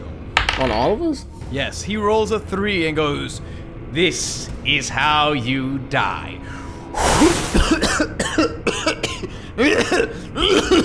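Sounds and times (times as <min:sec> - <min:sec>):
speech: 0:00.6 - 0:08.9, 0:09.6 - 0:10.8
person's voice imitating a dragon head coughing: 0:07.2 - 0:10.8.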